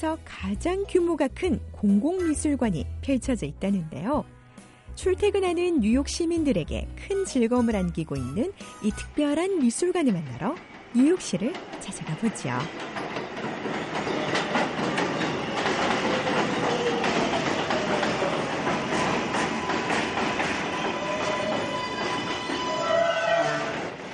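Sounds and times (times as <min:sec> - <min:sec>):
speech: 0:00.0 - 0:04.4, 0:05.0 - 0:14.2
subway train roaring through a station: 0:08.4 - 0:24.1
subway rail clatter: 0:09.3 - 0:24.1
metallic squeal of subway train brakes: 0:19.0 - 0:23.8.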